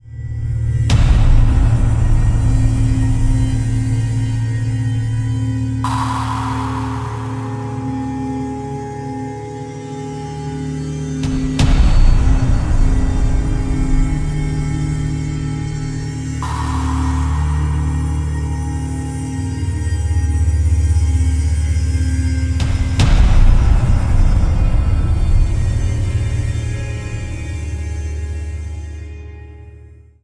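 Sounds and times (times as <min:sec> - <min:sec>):
suspense music: 0:00.0 - 0:09.8, 0:11.2 - 0:28.7.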